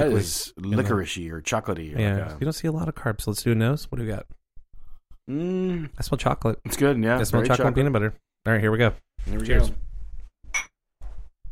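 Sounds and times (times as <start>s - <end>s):
speech: 0.0s - 4.4s, 5.3s - 9.9s
two beer glasses clinking in a toast: 10.6s - 10.8s.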